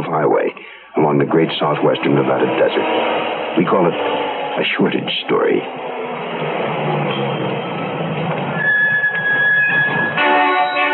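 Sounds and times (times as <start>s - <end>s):
heavy truck engine rumbling at a desert highway service station: 0.2s - 10.8s
speech: 1.2s - 7.0s
heavy truck brake squeal: 1.4s - 10.9s.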